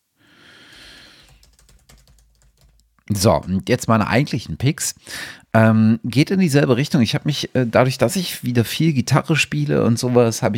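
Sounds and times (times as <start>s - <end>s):
typing on a computer keyboard while writing a note: 0.7s - 3.0s
speech: 3.1s - 10.5s.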